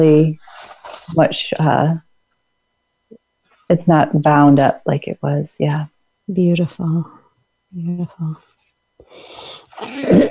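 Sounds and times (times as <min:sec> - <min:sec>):
speech: 0:00.0 - 0:02.0, 0:03.7 - 0:08.5, 0:09.1 - 0:10.2
person clearing throat raspily: 0:09.8 - 0:10.2
person coughing harshly: 0:09.8 - 0:10.2.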